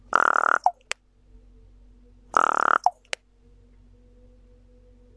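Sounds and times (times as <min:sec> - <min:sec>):
raven harsh rasping call: 0:00.1 - 0:00.8, 0:02.3 - 0:03.1.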